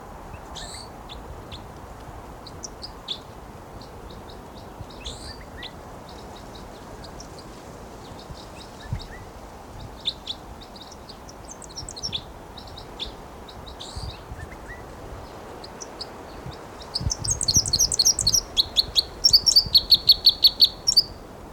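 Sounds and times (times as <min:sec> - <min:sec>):
steady outdoor hiss: 0:00.0 - 0:21.5
wild bird singing its flight song: 0:02.6 - 0:07.4, 0:09.9 - 0:14.8, 0:15.6 - 0:21.2.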